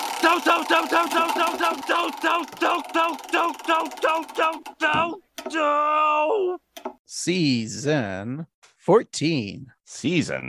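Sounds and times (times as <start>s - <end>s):
spinning prize wheel ticking: 0.0s - 5.6s
speech: 0.2s - 10.4s.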